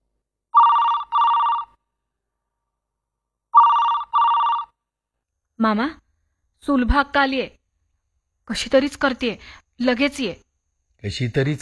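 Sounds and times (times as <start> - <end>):
telephone ringing for an incoming call at night: 0.5 - 1.8, 3.5 - 4.8
speech: 5.6 - 6.0, 6.6 - 7.6, 8.5 - 11.5.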